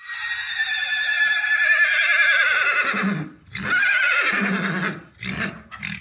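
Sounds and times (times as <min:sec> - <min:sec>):
horse whinnying: 0:00.0 - 0:05.9
horse nickering and snorting: 0:03.0 - 0:05.9.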